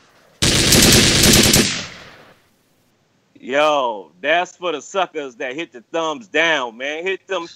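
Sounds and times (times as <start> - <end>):
automatic gunfire sound effect: 0.4 - 2.4
speech: 3.4 - 7.5.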